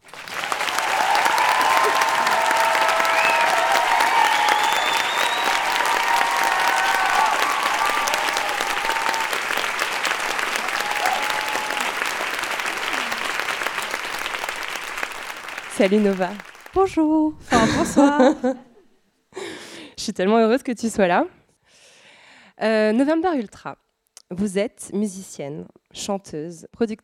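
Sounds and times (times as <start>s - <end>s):
large audience applauding at a live show: 0.0s - 16.8s
whoops and cheers: 0.4s - 13.3s
speech: 15.8s - 18.7s, 20.1s - 21.4s, 22.6s - 27.0s.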